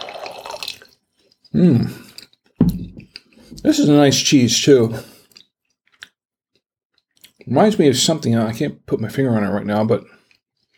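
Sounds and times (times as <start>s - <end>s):
wine glugging and splashing into a glass: 0.0s - 1.0s
speech: 1.5s - 2.0s, 3.6s - 5.1s, 7.5s - 10.2s.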